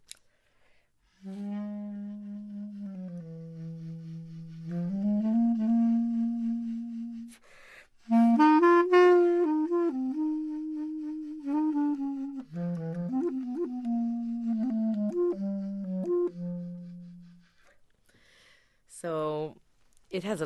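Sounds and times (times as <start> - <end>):
solo clarinet in its lower register played with tenor saxophone subtone technique: 1.1 - 17.8
speech: 20.2 - 20.4.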